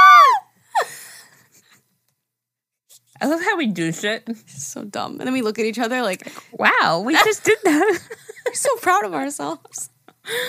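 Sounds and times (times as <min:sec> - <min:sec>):
hosts screaming: 0:00.0 - 0:00.5
speech: 0:03.2 - 0:10.4.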